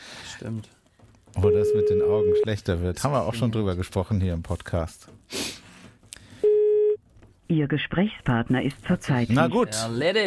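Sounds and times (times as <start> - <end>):
speech: 0.4 - 0.8, 1.4 - 5.4, 7.5 - 10.2
loud steady telephone busy-signal tone: 1.4 - 2.5, 6.4 - 7.0.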